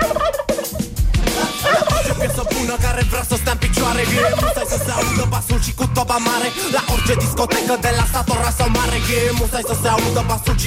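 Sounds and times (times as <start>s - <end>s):
turkey gobbling: 0.0s - 2.9s, 3.8s - 5.2s, 6.5s - 8.4s
speech: 3.9s - 10.6s.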